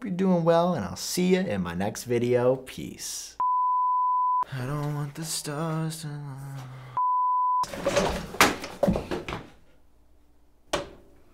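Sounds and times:
speech: 0.1 - 3.4, 4.5 - 7.0, 7.6 - 8.4
short steady beep: 3.4 - 4.5, 7.0 - 7.7.

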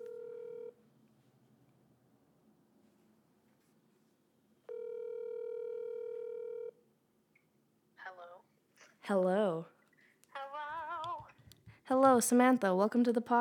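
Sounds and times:
phone call electronic ring tones on the line: 0.0 - 0.8, 4.7 - 6.8
speech: 9.0 - 9.7, 11.9 - 13.3.

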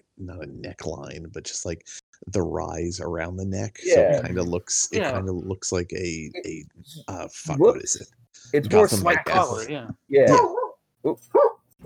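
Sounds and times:
speech: 0.2 - 11.5
dog barking: 10.3 - 11.8.

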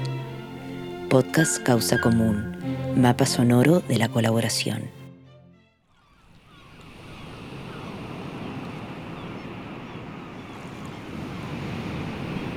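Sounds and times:
ocean surf of the northern Chilean sea: 0.0 - 4.2, 6.8 - 12.5
speech: 1.1 - 5.0
wind over the water: 6.2 - 12.5.

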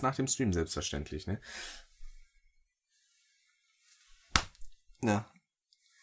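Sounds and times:
speech: 0.0 - 1.9, 5.0 - 5.3
soft rustle: 1.9 - 4.9, 5.7 - 6.0
hand slap swatting a mosquito: 4.3 - 4.8.

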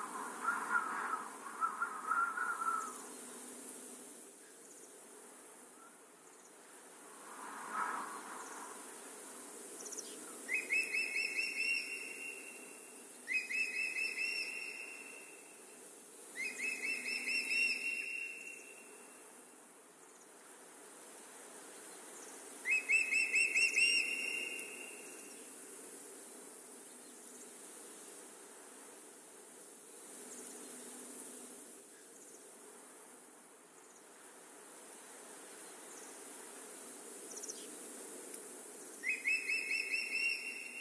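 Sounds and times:
wind hissing through leaves in a forest: 0.0 - 40.7
bird repeating short bright whistled phrases: 10.5 - 12.5, 13.3 - 15.2, 16.4 - 18.6, 22.7 - 25.0, 39.0 - 40.7.

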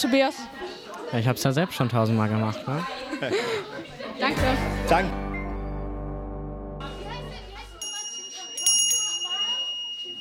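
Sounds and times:
speech: 0.0 - 5.3
busy hubbub of voices: 0.0 - 10.2
laughter: 2.7 - 5.1
school bell ringing for a change of classes: 6.9 - 10.2
bright metallic dings: 7.8 - 10.2.

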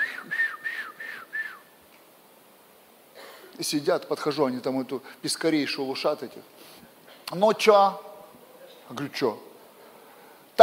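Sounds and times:
people sitting in a garage whistling to call someone over: 0.0 - 1.7
speech: 3.6 - 6.6, 7.3 - 8.1, 8.9 - 9.5.

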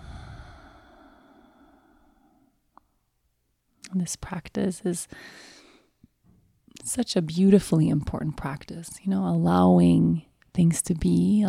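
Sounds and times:
long deep exhale through the mouth during guided breathing meditation: 0.0 - 2.5
speech: 3.9 - 5.6, 6.9 - 11.4.

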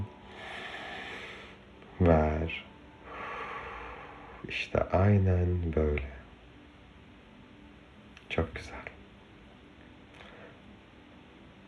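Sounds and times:
long deep breath drawn in through the nose: 0.2 - 1.6, 3.1 - 4.4
speech: 2.0 - 2.7, 4.5 - 6.2, 8.4 - 8.8.

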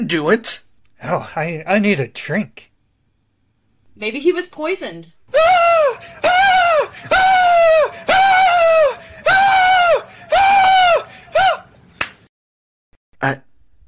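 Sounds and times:
speech: 0.0 - 2.7, 4.0 - 6.3, 13.2 - 13.4
person screaming: 5.3 - 11.7.

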